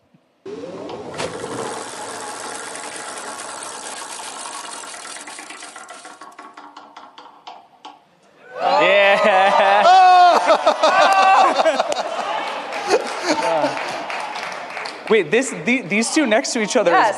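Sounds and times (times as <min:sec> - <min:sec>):
prize wheel spinning and clicking: 0:01.3 - 0:07.7
laughter: 0:08.6 - 0:14.3
speech: 0:15.1 - 0:17.1.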